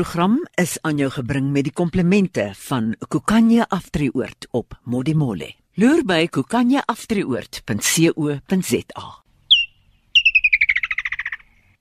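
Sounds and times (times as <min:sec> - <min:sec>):
speech: 0:00.0 - 0:09.2
woodland kingfisher calling: 0:09.4 - 0:11.6.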